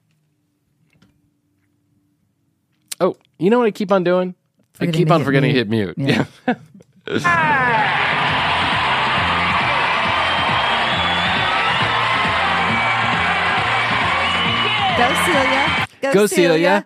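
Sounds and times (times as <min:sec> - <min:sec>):
speech: 0:03.0 - 0:08.2, 0:15.0 - 0:16.8
whoops and shouts from studio audience: 0:07.2 - 0:15.9
rhythmic beat: 0:07.2 - 0:16.4
large studio audience roaring and cheering: 0:07.2 - 0:16.7.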